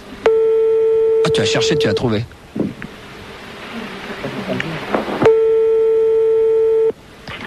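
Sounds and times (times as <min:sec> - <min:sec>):
telephone ringing during a call: 0:00.3 - 0:02.0, 0:05.3 - 0:06.9
speech: 0:01.2 - 0:02.4.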